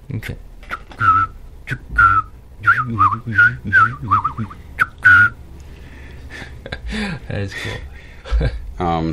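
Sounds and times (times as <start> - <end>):
speech: 0.1 - 4.7, 6.6 - 9.1
person whistling an imitation of a scarlet tanager call with pursed lips: 1.0 - 5.4.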